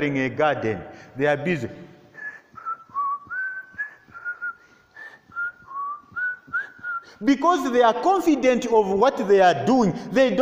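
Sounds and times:
speech: 0.0 - 1.9, 7.2 - 10.4
person whistling a relaxed wandering tune: 2.2 - 7.2.

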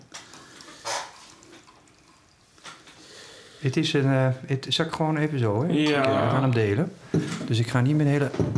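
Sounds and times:
drink pouring into a slightly tilted glass: 0.1 - 3.0
speech: 3.6 - 8.5.

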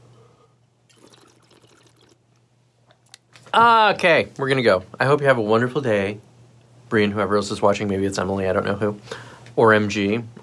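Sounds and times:
bubbling water imitating a bong hit: 0.9 - 2.2
speech: 3.6 - 6.3, 6.9 - 10.4.

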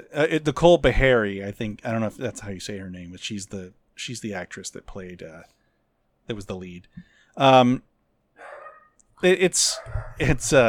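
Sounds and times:
speech: 0.1 - 5.6, 6.3 - 7.9, 9.2 - 10.6
dog barking: 8.4 - 9.0, 9.6 - 10.3.

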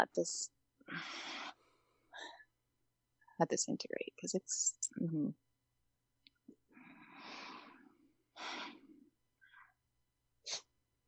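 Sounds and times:
speech: 0.0 - 1.3, 3.4 - 5.4
collective inhale and exhale breath: 0.8 - 2.6, 6.6 - 9.8.

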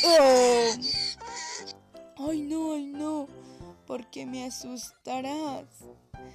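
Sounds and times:
speech: 0.0 - 0.3, 4.0 - 6.3
voice imitating a donkey's hee-haw bray: 0.0 - 1.7.

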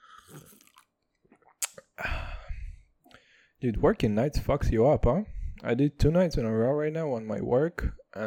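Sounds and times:
person sipping water: 0.0 - 3.2
speech: 3.6 - 8.2.

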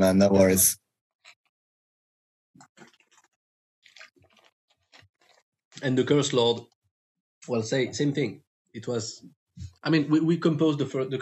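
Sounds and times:
speech: 0.0 - 0.8, 5.8 - 6.7, 7.4 - 11.1
slurp drinking water: 2.6 - 5.4
soft gulping swallows: 2.6 - 5.9.

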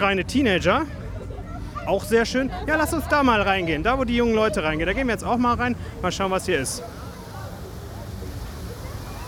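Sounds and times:
speech: 0.0 - 1.0, 1.8 - 7.0
faint crowd chatter: 0.0 - 9.2
waterfall rushing water: 6.2 - 9.2.

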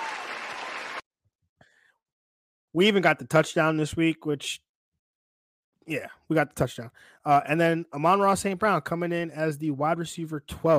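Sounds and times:
crowd applauding: 0.0 - 1.0
speech: 2.8 - 4.7, 5.9 - 10.7.

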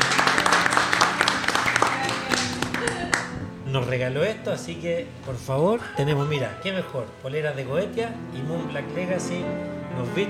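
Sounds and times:
live audience applauding: 0.0 - 3.4
speech: 3.8 - 10.2.

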